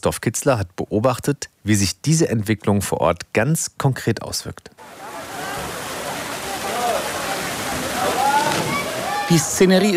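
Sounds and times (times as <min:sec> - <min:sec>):
speech: 0:00.0 - 0:05.7, 0:09.3 - 0:09.9
faint voices and shouts of people: 0:04.8 - 0:09.9
water gushing from a thick pipe into a pool: 0:04.9 - 0:09.3.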